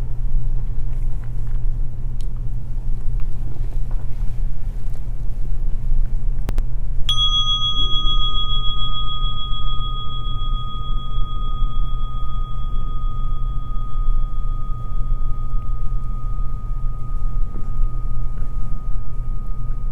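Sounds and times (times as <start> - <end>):
low rumbling hum: 0.0 - 19.8
meditation bell struck for sitting meditation: 7.1 - 19.8.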